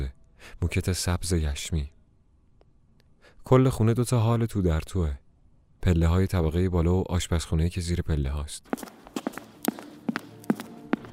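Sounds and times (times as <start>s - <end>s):
speech: 0.0s - 2.0s, 3.4s - 5.2s, 5.8s - 9.0s
footsteps on the floor upstairs: 8.7s - 11.1s.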